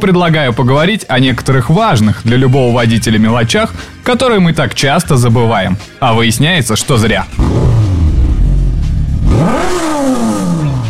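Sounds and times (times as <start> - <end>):
speech: 0.0 - 7.7
car engine starting and revving: 7.0 - 10.8.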